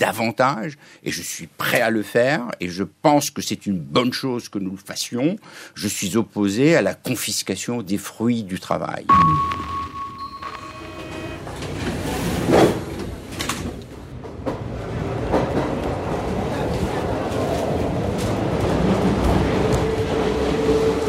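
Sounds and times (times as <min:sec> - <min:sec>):
speech: 0:00.0 - 0:09.8
brief tone inside a Paris metro train: 0:09.1 - 0:11.8
Paris metro train on Line 3 running, heard from inside: 0:09.9 - 0:21.0.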